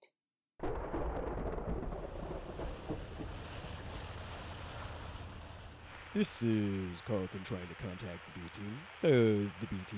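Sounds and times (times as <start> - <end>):
wind over the ocean: 1.4 - 6.2
rushing wash of ocean waves: 2.4 - 6.6
boat engine rumbling as the boat starts: 3.0 - 6.1
speech: 6.2 - 9.9.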